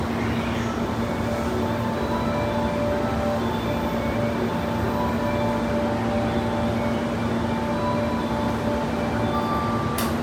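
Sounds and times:
train at Uguisudani north: 0:00.0 - 0:10.2.

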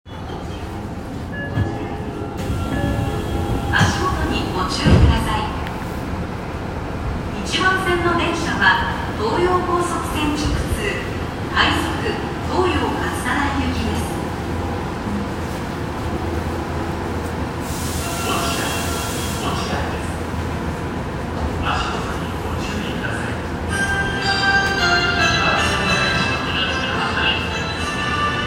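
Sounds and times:
Tozai Line subway train at Ochiai station: 0:00.0 - 0:28.4.

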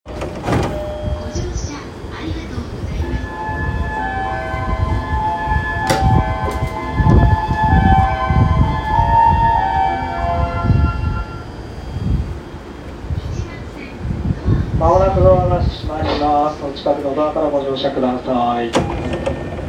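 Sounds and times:
JR Takasaki Line train sounds south of Oku: 0:00.1 - 0:19.6.

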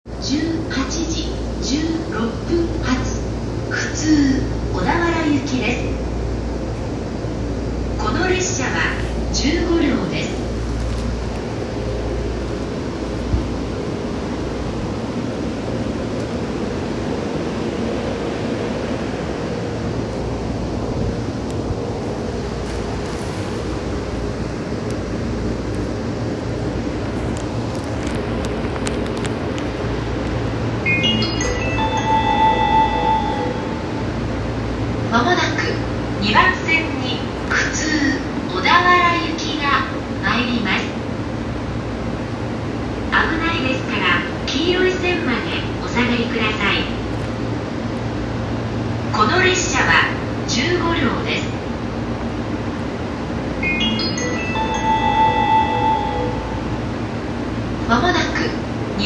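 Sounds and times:
train sounds on the JR Tokaido and Gotemba lines south of Kozu: 0:00.1 - 0:59.0.

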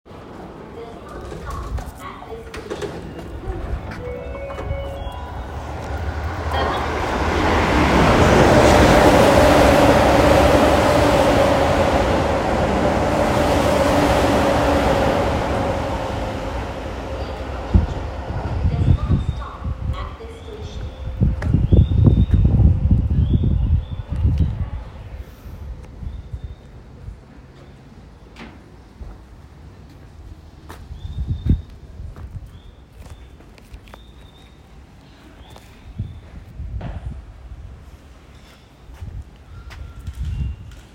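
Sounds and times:
Keio Line train passing at Shibasaki east: 0:00.1 - 0:30.8.

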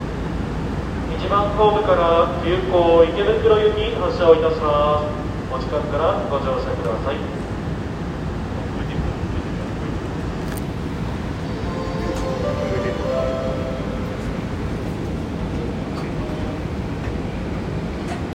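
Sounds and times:
train sounds at Hanno station east: 0:00.0 - 0:18.3.

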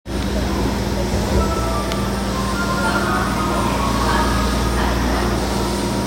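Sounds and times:
Namboku Line train at Ichigaya: 0:00.1 - 0:06.0.

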